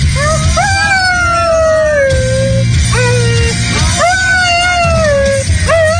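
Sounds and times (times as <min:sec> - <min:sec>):
dog howling along to singing: 0:00.0 - 0:05.9
loud rock music with a singing voice: 0:00.0 - 0:05.9.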